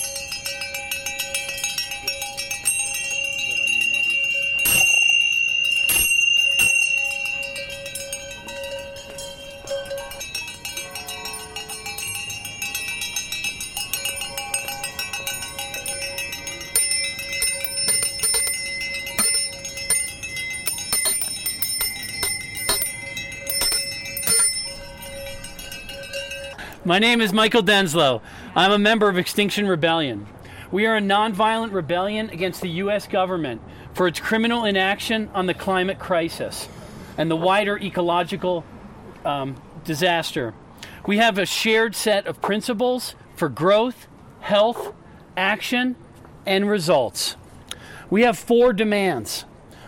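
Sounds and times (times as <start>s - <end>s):
many small bells ringing at a climate gathering: 0.0s - 27.6s
speech: 26.9s - 47.4s, 48.1s - 49.5s.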